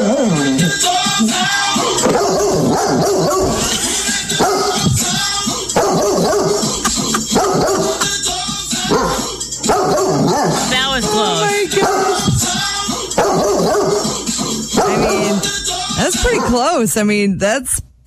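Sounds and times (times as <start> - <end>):
song with loud music and a rhythmic beat: 0.1 - 16.4
dog barking and yipping along to a song: 2.0 - 3.6, 4.4 - 4.8, 5.8 - 8.1, 8.9 - 10.7, 11.8 - 12.2, 13.2 - 14.1, 14.7 - 15.1
speech: 16.8 - 17.9.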